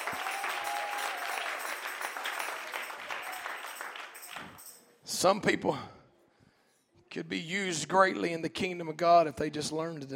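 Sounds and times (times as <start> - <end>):
church audience clapping: 0.0 - 4.8
speech: 5.2 - 6.0, 7.1 - 10.1.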